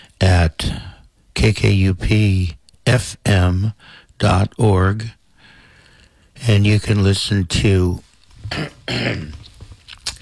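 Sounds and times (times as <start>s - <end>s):
speech: 1.4s - 5.2s, 6.4s - 9.4s
throat clearing: 8.4s - 9.5s.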